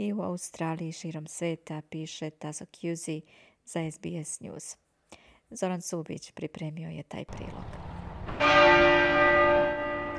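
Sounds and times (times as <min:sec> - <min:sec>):
speech: 0:00.0 - 0:04.8, 0:05.5 - 0:08.6
loud church bell strike: 0:07.6 - 0:10.1.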